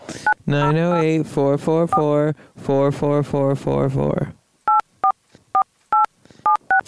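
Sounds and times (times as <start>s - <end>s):
speech: 0.5s - 4.4s
touch-tone phone keypad beeps dialing a number: 6.0s - 6.8s.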